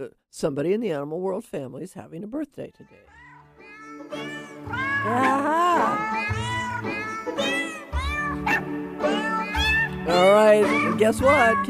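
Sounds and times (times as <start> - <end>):
speech: 0.0 - 3.2, 4.1 - 7.6, 10.1 - 11.6
recorded cat meows pitched into a melody: 2.9 - 11.6.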